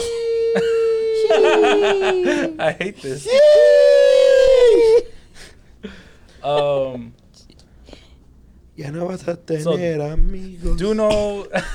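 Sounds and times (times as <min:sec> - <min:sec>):
dog howling: 0:00.0 - 0:05.2
laughter: 0:00.0 - 0:07.0, 0:11.4 - 0:11.7
speech: 0:00.5 - 0:03.8, 0:05.8 - 0:07.2, 0:08.8 - 0:11.7.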